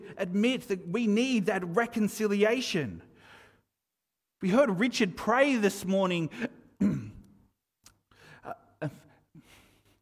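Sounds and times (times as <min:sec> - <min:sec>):
speech: 0:00.1 - 0:03.1, 0:04.4 - 0:07.1, 0:08.4 - 0:09.0
person clearing throat: 0:06.8 - 0:07.3.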